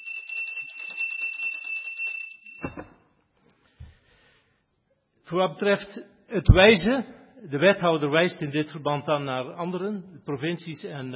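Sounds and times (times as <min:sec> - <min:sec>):
hand bell rung as an alarm for nature conservation in Deurne: 0:00.0 - 0:02.9
speech: 0:05.3 - 0:11.1.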